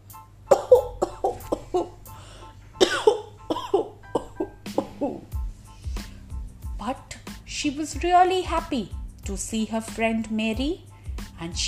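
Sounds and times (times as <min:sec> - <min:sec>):
child coughing: 0:00.5 - 0:02.0, 0:02.8 - 0:05.3
speech: 0:07.6 - 0:11.6.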